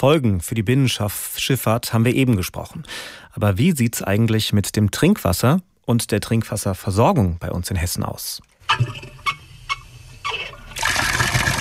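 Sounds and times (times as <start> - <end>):
speech: 0.0 - 9.2
tap handle squeaking while being turned: 8.6 - 10.7
water running from a faucet: 9.7 - 11.5.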